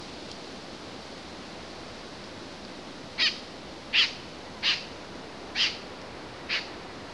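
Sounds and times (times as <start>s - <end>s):
Swinhoe's snipe nocturnal flight calls in Lingshan Beijing: 3.2s - 4.9s, 5.5s - 6.7s.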